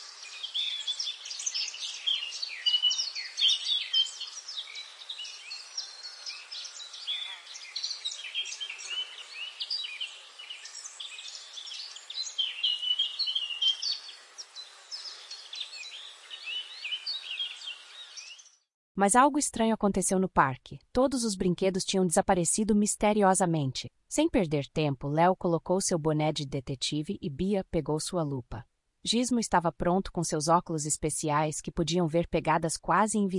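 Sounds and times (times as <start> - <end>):
dense chorus of birds chirping and trilling on a sunny morning: 0.0 - 18.6
speech: 19.0 - 33.3.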